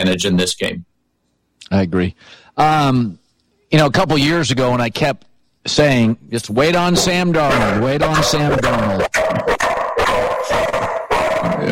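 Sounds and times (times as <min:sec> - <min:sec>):
speech: 0:00.0 - 0:00.9, 0:01.7 - 0:09.6
dog barking at someone at the door: 0:08.6 - 0:11.7.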